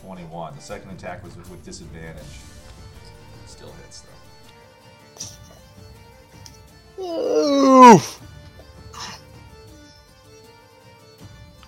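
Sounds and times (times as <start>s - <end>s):
speech: 0.0s - 2.7s, 3.5s - 4.3s, 7.0s - 8.3s
quick sneeze: 5.2s - 5.6s, 7.0s - 8.2s, 9.0s - 9.2s.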